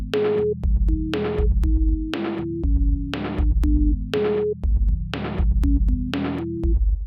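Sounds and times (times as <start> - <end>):
sine wave synth lead: 0.2 - 4.7, 5.6 - 6.8.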